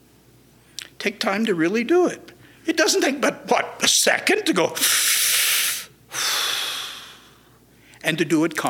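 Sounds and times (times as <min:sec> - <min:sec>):
speech: 0:01.0 - 0:05.0, 0:08.0 - 0:08.6
deliberate conscious breathing in and out: 0:02.4 - 0:02.7, 0:04.8 - 0:08.0.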